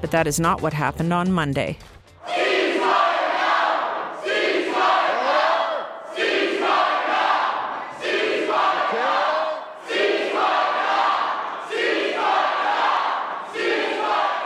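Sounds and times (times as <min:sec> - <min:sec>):
speech: 0:00.0 - 0:02.4
crowd shouting and chanting in a legislative chamber: 0:02.2 - 0:14.4
speaker yelling order in a legislature: 0:08.6 - 0:09.8.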